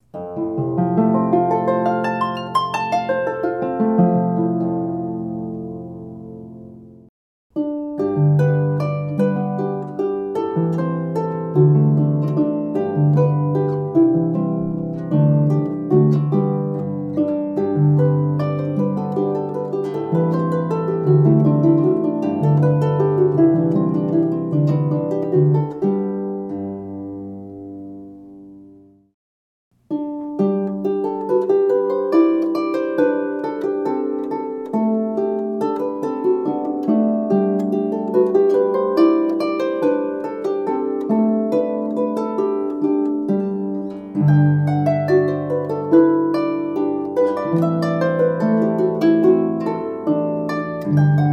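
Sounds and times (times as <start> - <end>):
harp notes from F to F: 0.0 - 28.9, 29.9 - 51.3.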